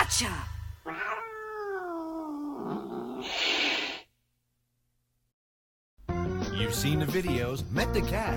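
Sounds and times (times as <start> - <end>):
speech: 0.1 - 1.0, 6.7 - 8.3
cat yowling meow: 0.8 - 3.3.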